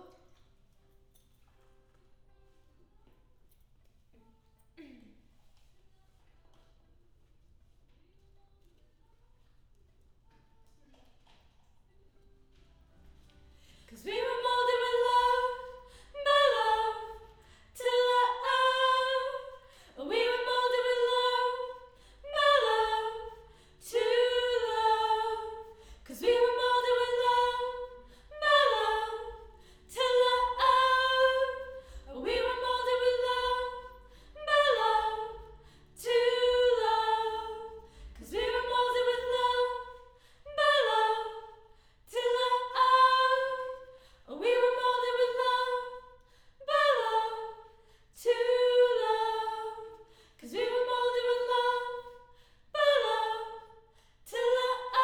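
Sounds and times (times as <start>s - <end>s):
choir harmony high mid: 13.1s - 55.0s.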